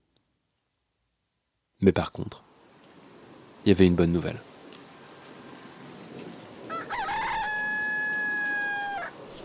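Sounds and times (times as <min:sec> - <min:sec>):
steady hiss of noise: 0:00.0 - 0:09.4
speech: 0:01.8 - 0:02.5, 0:03.6 - 0:04.5
recorded rooster crow through a poor-quality loudspeaker: 0:06.7 - 0:09.1.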